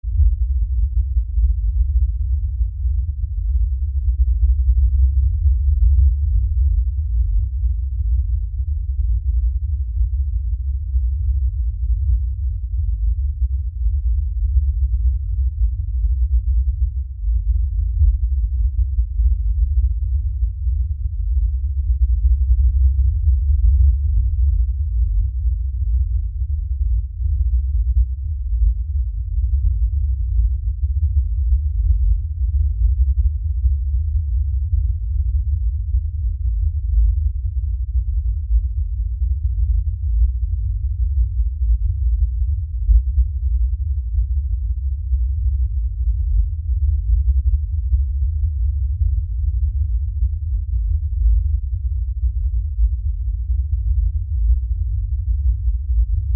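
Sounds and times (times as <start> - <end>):
LFE low bass rumble: 0.0 - 56.3.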